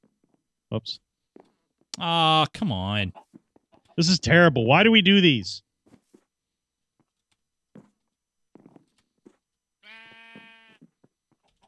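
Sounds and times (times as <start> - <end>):
speech: 0.7 - 1.0, 2.0 - 3.2, 4.0 - 5.7
sheep bleating: 9.8 - 10.9.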